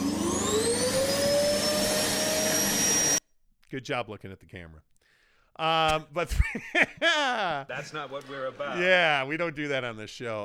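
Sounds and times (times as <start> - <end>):
vacuum cleaner running: 0.0 - 3.2
speech: 3.7 - 4.9, 5.6 - 10.4
laughter: 6.2 - 9.3.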